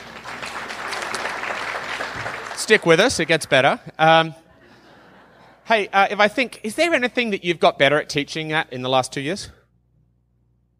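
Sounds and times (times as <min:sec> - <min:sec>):
crowd clapping: 0:00.0 - 0:03.8
speech: 0:02.6 - 0:04.4, 0:05.7 - 0:09.6
laughter: 0:04.4 - 0:06.0.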